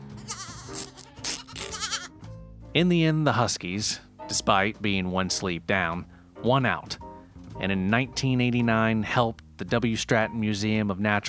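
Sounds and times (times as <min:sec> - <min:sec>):
goats bleating: 0:00.1 - 0:02.1
speech: 0:02.8 - 0:11.2.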